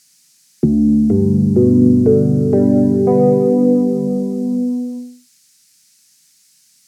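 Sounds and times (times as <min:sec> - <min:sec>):
electric piano: 0:00.6 - 0:05.2.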